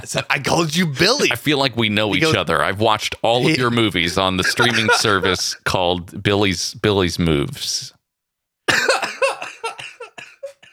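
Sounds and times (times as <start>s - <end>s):
speech: 0.0s - 8.0s
laughter: 3.3s - 5.6s
person having a coughing fit: 8.7s - 10.7s.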